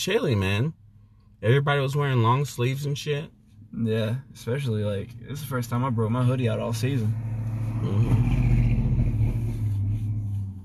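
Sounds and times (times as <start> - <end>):
speech: 0.0 - 0.8, 1.4 - 8.4
large truck engine revving roughly: 7.2 - 10.5.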